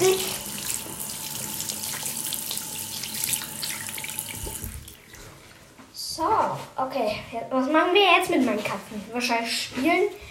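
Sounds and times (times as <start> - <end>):
running tap water splashing into a sink as hands are washed: 0.0 - 5.3
speech: 6.8 - 10.2.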